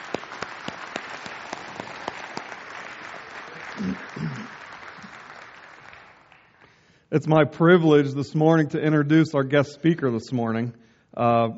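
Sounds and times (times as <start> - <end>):
sharp individual claps: 0.0 - 6.8
large crowd applauding for worship team: 0.0 - 6.9
speech: 3.8 - 4.4, 7.1 - 11.5.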